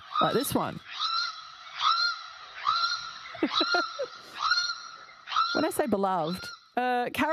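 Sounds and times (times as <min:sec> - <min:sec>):
channel-billed cuckoo honking calls: 0:00.0 - 0:06.8
speech: 0:00.2 - 0:00.9, 0:03.4 - 0:04.0, 0:05.5 - 0:07.3
laughter: 0:03.2 - 0:04.4.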